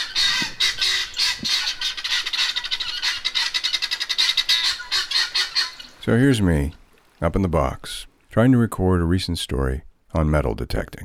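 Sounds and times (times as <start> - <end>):
guinea hens calling: 0.0 - 6.9
speech: 6.1 - 11.0.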